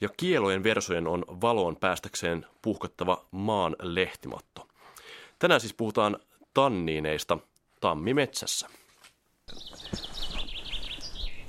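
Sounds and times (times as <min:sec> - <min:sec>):
speech: 0:00.0 - 0:04.7, 0:05.4 - 0:08.8
common chaffinch singing on an oak branch in a spring oak grove: 0:09.5 - 0:11.4.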